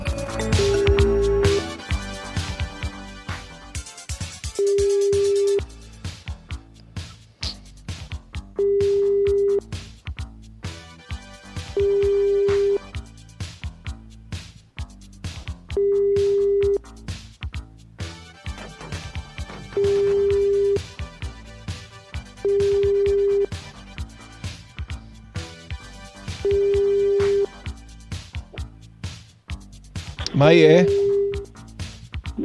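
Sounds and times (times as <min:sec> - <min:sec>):
busy music: 0:00.0 - 0:32.4
telephone ringing tone of an outgoing call: 0:00.5 - 0:01.7, 0:04.6 - 0:05.6, 0:11.8 - 0:12.8, 0:19.8 - 0:20.8, 0:22.4 - 0:23.5, 0:26.4 - 0:27.5, 0:30.8 - 0:31.4
speech: 0:30.4 - 0:31.0.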